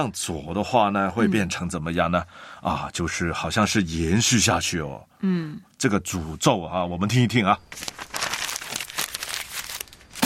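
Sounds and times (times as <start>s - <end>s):
speech: 0.0s - 8.2s
paper being crumpled: 7.7s - 10.2s.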